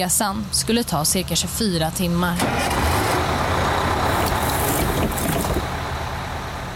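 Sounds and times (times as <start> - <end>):
speech: 0.0 - 3.1
large bus engine idling: 0.0 - 6.7.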